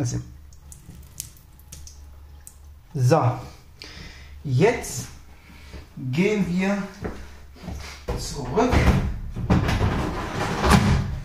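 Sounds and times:
speech: 0.0s - 0.4s, 2.9s - 3.6s, 4.4s - 5.1s, 6.0s - 9.1s
water trickling and dripping out of a tank: 0.0s - 3.2s
low steady hum: 0.0s - 11.2s
soft splashes and wet spatters: 0.4s - 2.9s.

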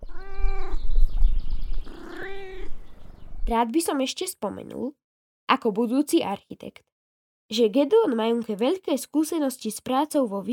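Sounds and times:
cat meowing at a mountain hut: 0.0s - 0.8s, 1.8s - 2.8s
speech: 3.5s - 6.9s, 7.5s - 10.5s.

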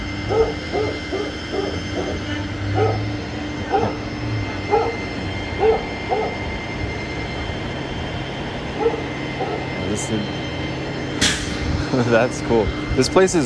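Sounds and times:
steady rumbling noise: 0.0s - 13.4s
old dog barking: 0.3s - 4.0s, 4.7s - 5.0s, 5.6s - 6.4s, 8.8s - 9.7s
laughter: 11.8s - 12.4s
speech: 12.1s - 13.4s.

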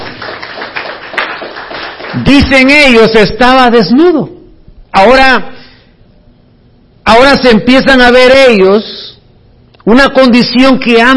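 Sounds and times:
crowd clapping: 0.0s - 3.0s
speech: 2.2s - 4.4s, 5.0s - 5.6s, 7.1s - 9.0s, 9.8s - 11.1s.

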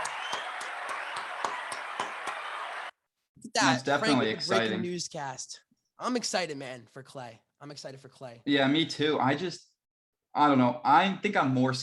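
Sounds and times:
sharper evenly spaced claps: 0.0s - 2.9s
crowd applause sound effect from a soundboard: 0.0s - 3.0s
speech: 3.6s - 9.7s, 10.3s - 11.8s.

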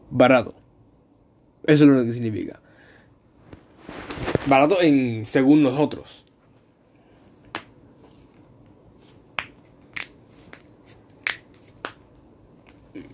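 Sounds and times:
speech: 0.1s - 0.6s, 1.6s - 2.6s, 4.4s - 6.2s
finger knuckles cracking: 9.4s - 13.1s.

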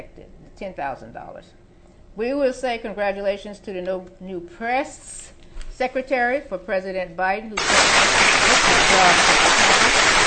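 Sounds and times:
speech: 0.0s - 1.6s, 2.2s - 9.7s
crowd applauding: 7.6s - 10.2s.

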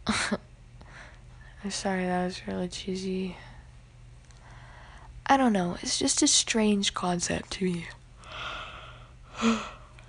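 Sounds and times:
speech: 0.1s - 0.5s, 1.6s - 3.5s, 5.3s - 8.0s, 9.4s - 9.8s
yawn: 9.3s - 9.9s.

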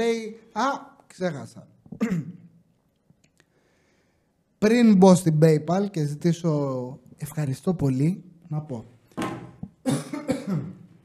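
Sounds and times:
speech: 0.0s - 2.4s, 4.6s - 8.9s
person coughing after choking: 2.0s - 2.5s, 9.8s - 10.9s.

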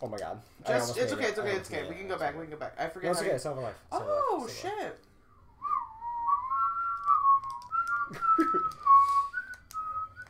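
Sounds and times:
speech: 0.0s - 5.1s, 8.1s - 9.2s
whistled melody: 5.5s - 10.2s.

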